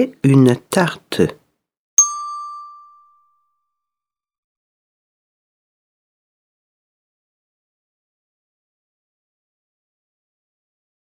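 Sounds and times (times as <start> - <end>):
speech: 0.0 - 1.4
bright bell chime cueing sentence rereading in a reading lesson: 2.0 - 3.4.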